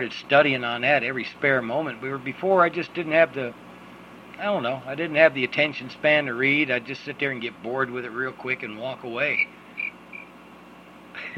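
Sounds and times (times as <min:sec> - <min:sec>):
speech: 0:00.0 - 0:03.6, 0:04.4 - 0:09.6
quiet hiss: 0:00.0 - 0:11.3
cricket chirping: 0:09.3 - 0:10.4.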